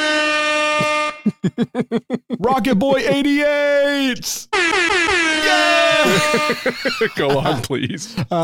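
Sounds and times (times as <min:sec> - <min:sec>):
loud sustained air horn blast with brassy tone: 0:00.0 - 0:01.2, 0:04.5 - 0:06.7
laughter: 0:00.8 - 0:03.4, 0:05.6 - 0:08.4
speech: 0:01.2 - 0:08.4.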